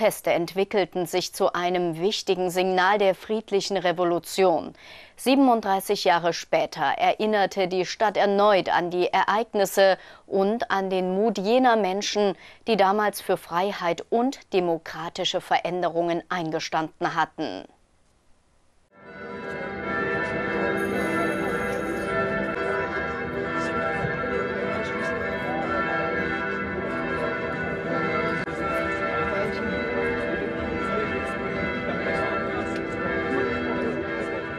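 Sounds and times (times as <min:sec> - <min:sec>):
speech: 0:00.0 - 0:17.8
church bells ringing before a commemoration event: 0:19.0 - 0:34.5.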